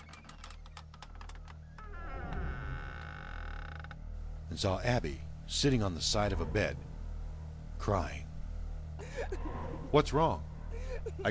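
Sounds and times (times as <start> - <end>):
cabin door creaking slowly open in Wisconsin: 0.0 - 4.1
low hum: 0.0 - 11.2
speech: 4.5 - 6.9, 7.8 - 8.2, 9.2 - 11.2.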